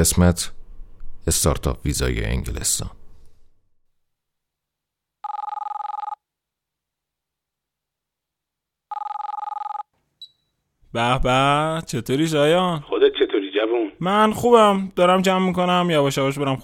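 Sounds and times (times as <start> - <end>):
speech: 0.0 - 0.6, 1.2 - 3.0, 10.9 - 16.6
incoming WhatsApp call ringing: 5.2 - 6.2, 8.9 - 9.9
faint brief tone: 10.2 - 10.6.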